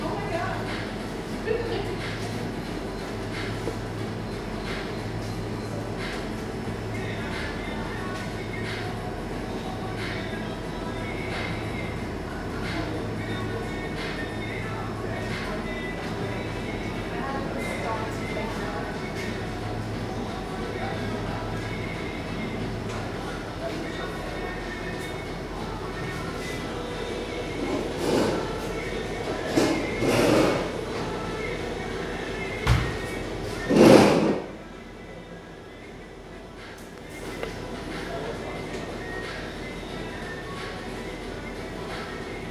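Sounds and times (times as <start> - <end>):
murmur of voices in a coffee shop: 0.0 - 42.5.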